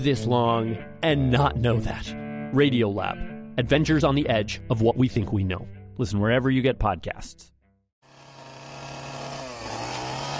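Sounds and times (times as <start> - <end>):
speech: 0.0 - 7.5
chainsaw motor running: 8.0 - 10.3.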